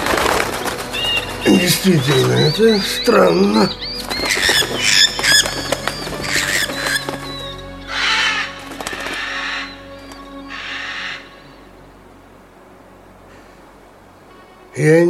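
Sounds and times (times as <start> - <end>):
flocks of birds cawing and squawking: 0.0 - 11.8
rushing noise of flocks of birds flying off: 0.0 - 14.3
speech: 1.5 - 5.7, 14.8 - 15.0.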